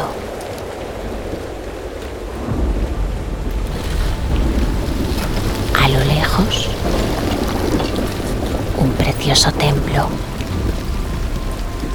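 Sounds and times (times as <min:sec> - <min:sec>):
heavy pouring rain: 0:00.0 - 0:11.9
deep low rumble: 0:02.4 - 0:11.9
speech: 0:09.4 - 0:10.3.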